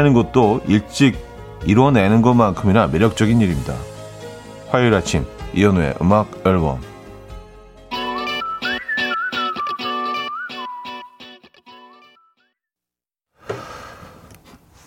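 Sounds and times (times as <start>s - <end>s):
speech: 0.0s - 3.9s, 4.7s - 6.9s
pop song with whistled melody: 7.9s - 12.5s.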